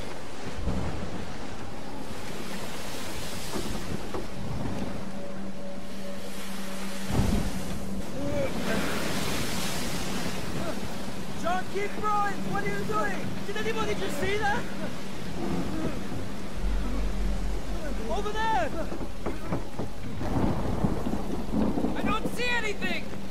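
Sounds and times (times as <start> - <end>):
low sustained hum: 0.0 - 21.9
heavy surf crashing in storm: 0.0 - 23.2
strong storm wind roaring: 0.0 - 23.2
deep thunder-like booms: 7.1 - 10.6, 15.3 - 22.5
speech: 11.8 - 15.6, 18.2 - 19.0, 22.4 - 23.1.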